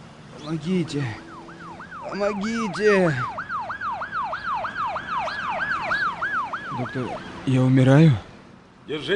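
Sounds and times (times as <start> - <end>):
faint low rumble of traffic: 0.0 - 9.1
speech: 0.4 - 1.3, 2.0 - 3.4, 6.8 - 8.3, 8.9 - 9.1
ambulance siren yelping: 0.5 - 7.5.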